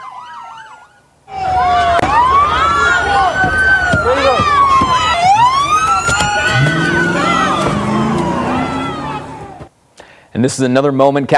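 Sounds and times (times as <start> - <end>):
wailing siren: 0.0 - 9.7
crowd voices shouting in a street: 1.3 - 9.7
speech: 10.4 - 11.3.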